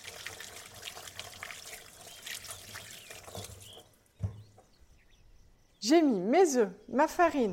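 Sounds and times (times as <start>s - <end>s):
tap water running over hands while washing: 0.0s - 4.0s
speech: 5.9s - 7.5s.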